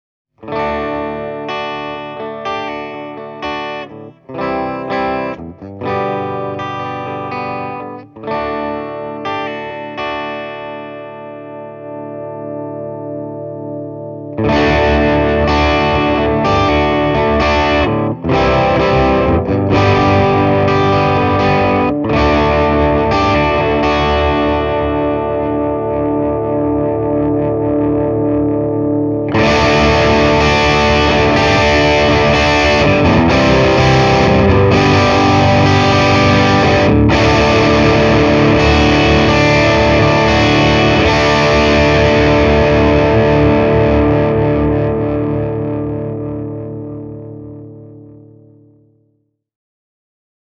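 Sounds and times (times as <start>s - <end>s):
electric guitar through valve amplifier crunch channel with reverb: 0.4s - 49.1s.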